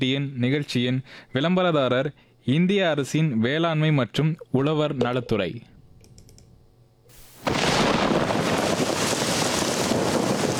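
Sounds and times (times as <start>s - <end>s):
speech: 0.0s - 5.7s
heavy rain: 7.1s - 10.5s
wind: 7.1s - 10.5s.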